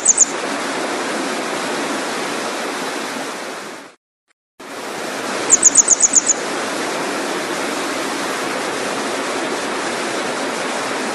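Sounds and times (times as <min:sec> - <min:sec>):
grey wagtail calls with sharp high ticking notes: 0:00.0 - 0:00.4, 0:05.5 - 0:06.4
loud steady rushing water: 0:00.0 - 0:04.0, 0:04.6 - 0:11.1.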